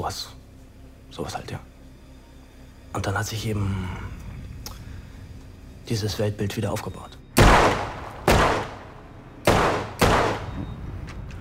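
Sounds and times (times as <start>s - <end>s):
speech: 0.1s - 0.4s, 1.1s - 1.7s, 2.9s - 4.1s, 5.9s - 7.8s
gunshots at a shooting range: 7.4s - 10.7s.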